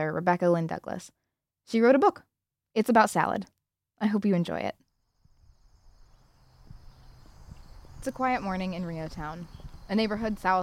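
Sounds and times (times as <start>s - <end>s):
speech: 0.0s - 4.8s, 8.0s - 10.6s
crickets and other critters chirping in grass: 5.0s - 10.6s
faint low rumbling: 5.2s - 10.6s.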